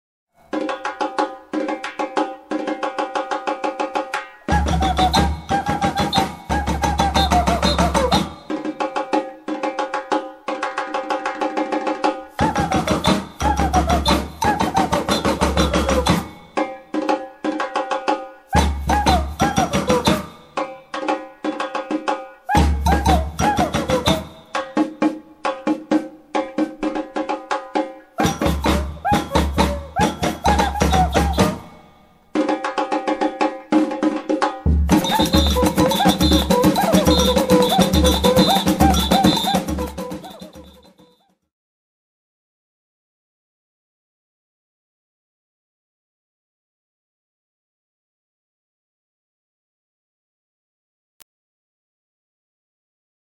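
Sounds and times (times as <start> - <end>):
samba instruments playing: 0.4 - 41.2.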